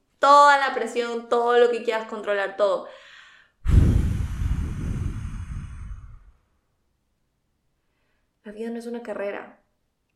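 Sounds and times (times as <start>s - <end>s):
speech: 0.2s - 3.1s, 8.5s - 9.6s
deep exhale in a guided breathing exercise: 3.0s - 6.5s.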